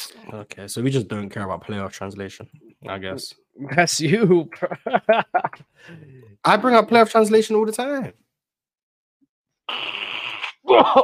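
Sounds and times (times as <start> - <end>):
speech: 0.1 - 8.2, 10.7 - 11.0
laughter: 3.6 - 6.2
nose blowing: 9.7 - 10.7
wet snort: 9.7 - 10.7.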